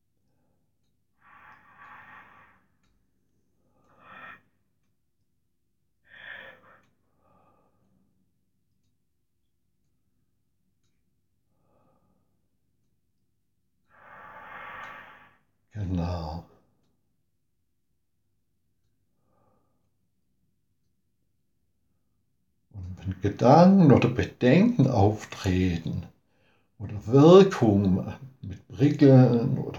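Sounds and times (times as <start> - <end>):
slow deep breathing: 1.2 - 4.7, 6.0 - 8.2, 11.5 - 12.5, 13.9 - 15.6, 26.3 - 26.8
speech: 23.2 - 26.1, 26.8 - 29.7.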